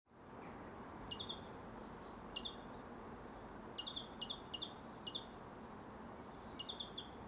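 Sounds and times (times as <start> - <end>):
steady background hiss: 0.1 - 7.2
European greenfinch Chloris chloris chirping: 1.1 - 2.7, 3.4 - 5.4, 6.2 - 7.2.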